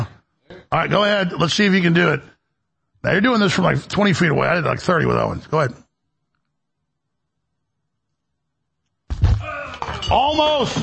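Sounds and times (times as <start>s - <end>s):
speech: 0.8s - 2.3s, 3.0s - 5.8s, 10.1s - 10.8s
glass mineral water bottle knocked over: 9.8s - 10.8s.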